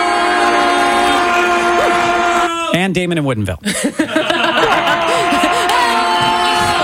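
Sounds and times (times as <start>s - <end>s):
goal horn blaring: 0.0s - 2.5s
crowd cheering: 0.0s - 2.8s, 4.0s - 6.8s
speech: 2.8s - 4.4s
laughter: 3.6s - 6.8s.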